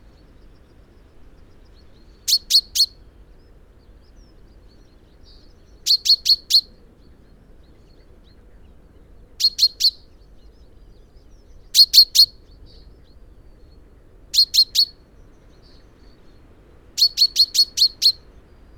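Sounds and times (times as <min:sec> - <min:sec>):
common chaffinch Fringilla coelebs calling: 0:02.2 - 0:03.0, 0:05.3 - 0:06.7, 0:09.4 - 0:10.2, 0:11.8 - 0:12.4, 0:14.3 - 0:16.0, 0:17.0 - 0:18.5.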